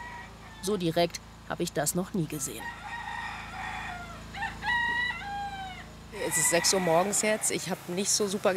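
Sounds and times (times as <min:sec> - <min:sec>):
rooster crowing: 0:00.0 - 0:00.8, 0:02.3 - 0:08.0
low steady hum: 0:00.0 - 0:08.5
speech: 0:00.6 - 0:03.0, 0:06.2 - 0:08.5.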